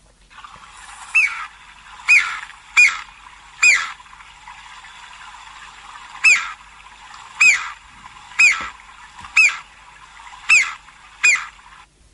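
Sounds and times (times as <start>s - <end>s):
ground woodpecker giving loud harsh squeaky calls: 1.1s - 4.0s, 6.2s - 6.6s, 7.4s - 9.7s, 10.4s - 11.6s.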